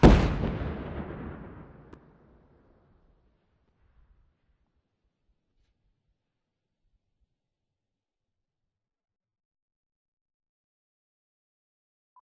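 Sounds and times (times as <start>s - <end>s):
distant nuke destruct explosion: 0.0s - 2.9s.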